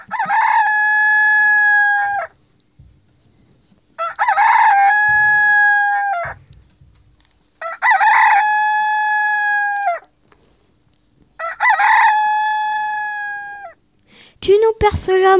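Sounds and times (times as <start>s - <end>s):
rooster perched on a courtyard door crowing: 0.0s - 2.4s, 4.0s - 6.5s, 7.6s - 10.1s, 11.4s - 13.8s
speech: 14.9s - 15.3s.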